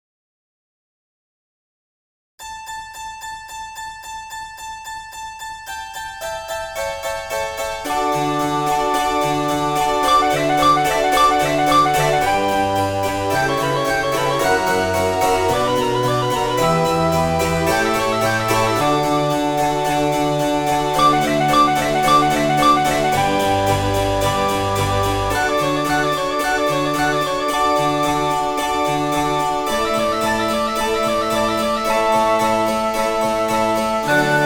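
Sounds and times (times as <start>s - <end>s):
harpsichord: 2.4s - 34.4s
flute: 7.9s - 34.4s
organ: 8.0s - 34.4s.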